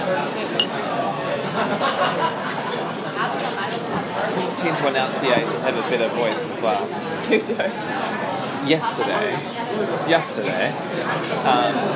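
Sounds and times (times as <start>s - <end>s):
glasses clinking in a toast: 0.6s - 0.8s
laughter: 1.3s - 3.8s
speech: 4.6s - 11.9s.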